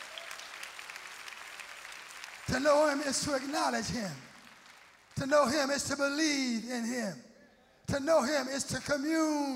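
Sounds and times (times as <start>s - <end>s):
crowd clapping hands: 0.0s - 5.8s
speech: 2.5s - 4.3s, 5.2s - 7.3s, 7.9s - 9.5s.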